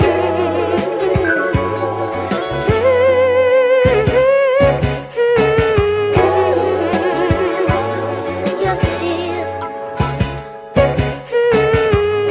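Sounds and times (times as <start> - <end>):
voice and horns loop: 0.0 - 9.5, 10.8 - 12.2.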